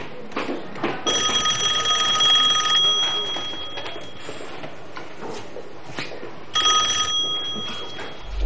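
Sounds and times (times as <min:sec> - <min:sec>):
telephone ringing with a high rattling electric bell: 0:01.1 - 0:04.6, 0:06.5 - 0:08.3.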